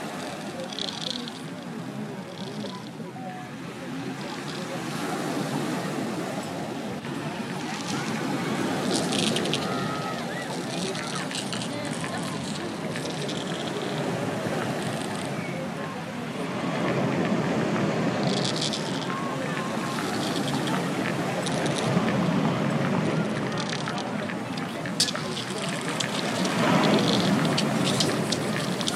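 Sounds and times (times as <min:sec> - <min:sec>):
waves washing over a pebble beach on the Côte d'Azur: 0:00.0 - 0:28.9
pebbles clattering and rattling in the backwash: 0:07.5 - 0:13.8, 0:18.2 - 0:28.9.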